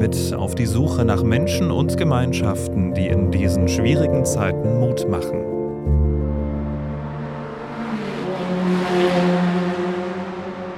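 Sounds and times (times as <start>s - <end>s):
speech: 0.1s - 6.0s
Formula 1 race cars roaring on track: 6.4s - 10.7s.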